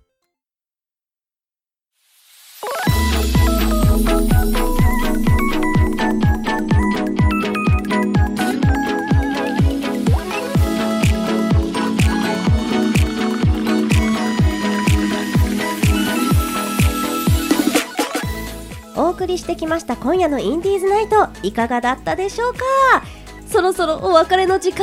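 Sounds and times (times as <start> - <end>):
requested song on the radio with driving beat and layered instruments: 2.6 - 19.0
speech: 19.2 - 24.8.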